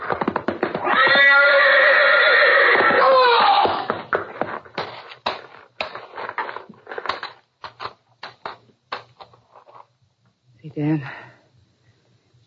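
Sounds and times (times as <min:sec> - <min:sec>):
knocks and shuffling thuds: 0:00.0 - 0:00.9, 0:02.8 - 0:10.4
horse whinnying in a stall: 0:00.0 - 0:04.1.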